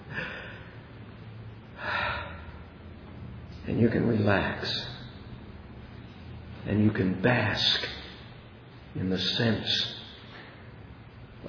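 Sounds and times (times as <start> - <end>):
deep breaths drawn audibly: 0.0 - 1.0, 1.6 - 2.8
speech: 3.7 - 4.9, 6.6 - 8.0, 9.0 - 10.0.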